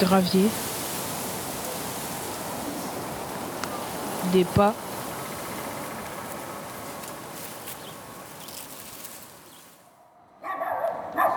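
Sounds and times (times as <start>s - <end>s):
speech: 0.0s - 0.7s, 4.3s - 4.8s
steady hissy outdoor noise: 0.0s - 10.2s
dog barking: 10.4s - 11.3s.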